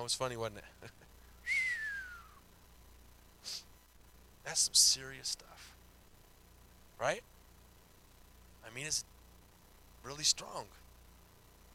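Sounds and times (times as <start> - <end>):
speech: 0.0 - 1.0, 4.5 - 5.8, 7.0 - 7.3, 8.6 - 9.1, 10.0 - 10.8
person whistling: 1.4 - 2.4
faint breathy sound: 3.4 - 3.8.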